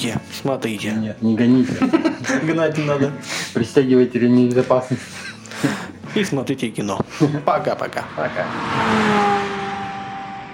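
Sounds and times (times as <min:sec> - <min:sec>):
speech: 0:00.0 - 0:09.5
laughter: 0:01.4 - 0:03.8, 0:04.6 - 0:06.4, 0:07.0 - 0:08.6
car engine revving: 0:07.4 - 0:10.5.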